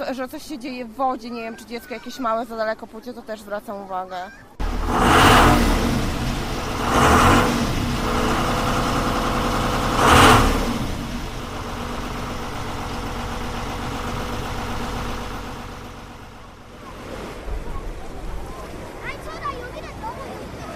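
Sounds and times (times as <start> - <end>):
speech: 0.0 - 5.7
motorboat engine idling and revving at a station in Giżycko Poland: 4.6 - 20.7.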